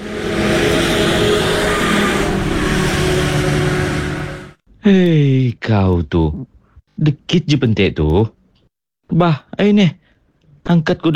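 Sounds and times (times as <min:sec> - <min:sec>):
car engine revving while parking: 0:00.0 - 0:04.6
speech: 0:04.9 - 0:08.4, 0:09.1 - 0:10.0, 0:10.6 - 0:11.1.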